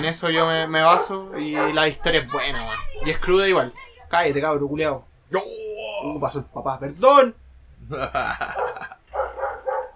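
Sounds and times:
speech: 0.0 - 8.6
dog barking in harsh bursts: 0.3 - 2.5, 8.5 - 9.9
laughter: 7.9 - 9.2.

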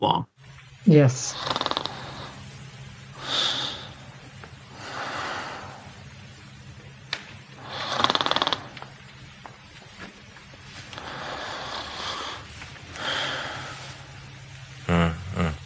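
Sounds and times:
speech: 0.0 - 1.6
low steady hum: 0.0 - 15.6
man snoring loudly in his sleep: 1.3 - 2.4, 3.1 - 4.1, 7.6 - 9.0, 11.0 - 14.1, 14.8 - 15.6.

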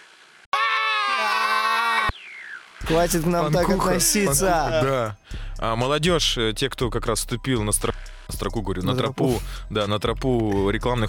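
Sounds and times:
several people screaming: 0.5 - 2.2
speech: 2.8 - 11.0.

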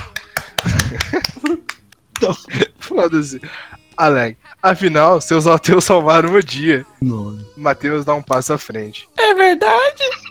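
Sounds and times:
hand claps: 0.0 - 2.4, 8.3 - 8.5
speech: 2.2 - 10.2.

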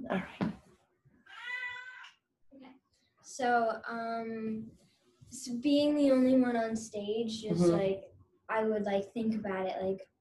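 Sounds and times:
speech: 0.1 - 0.4, 3.3 - 10.1
cat meowing: 1.3 - 2.1
person murmuring: 7.5 - 7.9.

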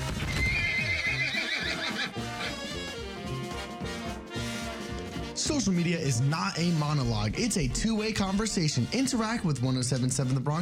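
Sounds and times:
horse hooves clip-clopping: 0.0 - 5.2
horse whinnying: 0.1 - 3.2
speech: 5.5 - 10.6.

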